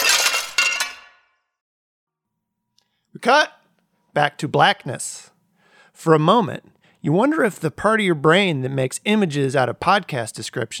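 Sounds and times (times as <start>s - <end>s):
glass fragments tinkling: 0.0s - 1.1s
glass shattering: 0.0s - 1.4s
speech: 3.1s - 3.6s, 4.2s - 5.3s, 6.0s - 10.7s.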